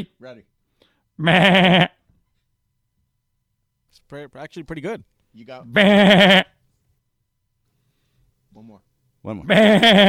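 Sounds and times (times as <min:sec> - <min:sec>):
speech: 0:00.0 - 0:00.6, 0:01.2 - 0:02.0, 0:04.1 - 0:06.6, 0:08.6 - 0:10.0
human voice mimicking a goat bleat: 0:01.2 - 0:02.0, 0:05.7 - 0:06.5, 0:09.4 - 0:10.0.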